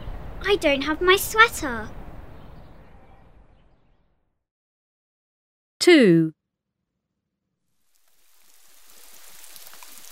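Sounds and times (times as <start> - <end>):
speech: 0.5 - 2.0, 5.8 - 6.4
steady rain falling: 7.8 - 10.1.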